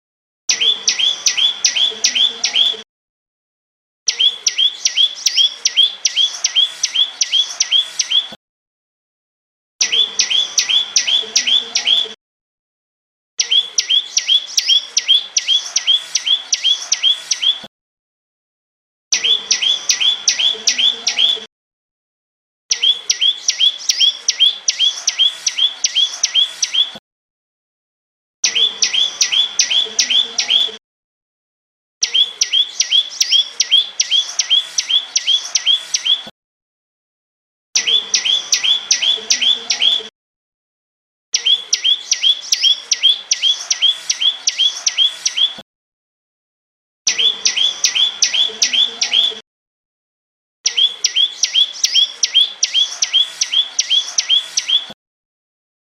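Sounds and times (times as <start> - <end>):
mossy prinia bird singing: 0.5 - 2.8, 4.1 - 8.3, 9.8 - 12.2, 13.4 - 17.6, 19.1 - 21.5, 22.7 - 27.0, 28.4 - 30.8, 32.0 - 36.3, 37.8 - 40.1, 41.4 - 45.6, 47.1 - 49.4, 50.7 - 55.0.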